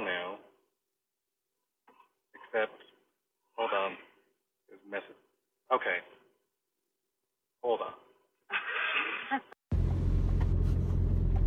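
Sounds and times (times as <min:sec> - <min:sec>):
speech: 0:02.5 - 0:02.9, 0:03.7 - 0:04.1, 0:04.7 - 0:06.2, 0:07.6 - 0:08.0, 0:09.3 - 0:09.5
low-pitched engine and road rumble inside a moving car: 0:09.7 - 0:11.4.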